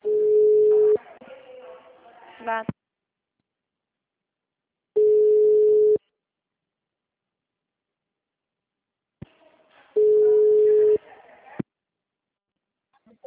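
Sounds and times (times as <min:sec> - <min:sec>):
telephone busy tone beeps after a dropped call: 0:00.0 - 0:01.0, 0:05.0 - 0:06.0, 0:10.0 - 0:11.0
faint noise: 0:00.0 - 0:13.2
speech: 0:02.4 - 0:02.8.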